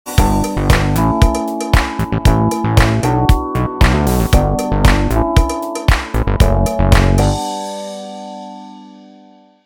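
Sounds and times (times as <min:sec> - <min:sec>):
bass drums: 0:00.2 - 0:07.4.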